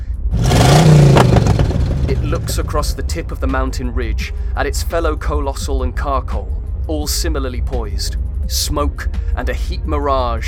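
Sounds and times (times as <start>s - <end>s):
engine rumbling and grinding: 0.0s - 4.8s
speech: 2.3s - 10.4s.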